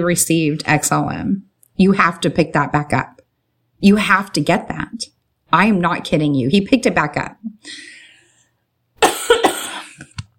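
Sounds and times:
speech: 0.0 - 3.1, 3.8 - 7.9
person coughing harshly: 9.0 - 10.2.

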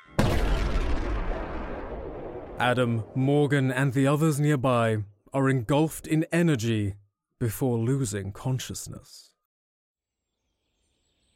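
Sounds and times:
large explosion as an energy crystal shatters: 0.2 - 3.6
speech: 2.6 - 9.3.

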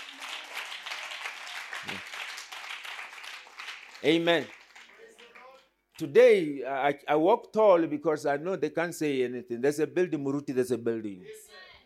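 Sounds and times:
crowd of people clapping their hands: 0.0 - 5.7
speech: 1.8 - 2.1, 4.0 - 4.6, 6.0 - 11.7.

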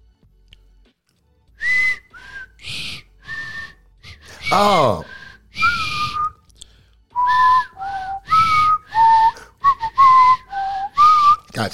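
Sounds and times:
person whistling a short hip-hop tune: 1.6 - 6.4, 7.1 - 11.5
speech: 4.5 - 5.1, 11.6 - 11.7.

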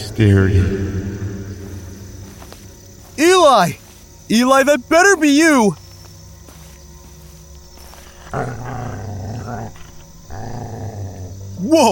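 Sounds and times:
speech: 0.2 - 1.2, 3.2 - 5.8, 8.3 - 8.6, 11.6 - 11.9
two dogs growling: 7.8 - 11.9.

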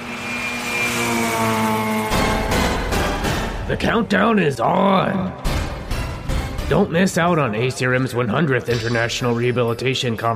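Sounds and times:
monster truck engine revving: 0.0 - 4.1
speech: 3.7 - 5.5, 6.7 - 10.3.

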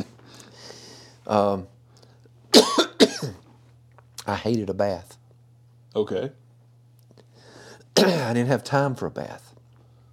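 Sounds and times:
speech: 1.3 - 1.7, 4.3 - 5.2, 6.0 - 6.4, 8.0 - 9.5
person coughing: 2.5 - 3.4, 7.9 - 8.4.

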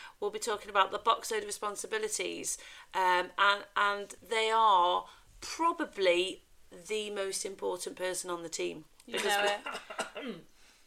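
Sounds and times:
speech: 0.2 - 10.5
person coughing: 9.2 - 10.5.

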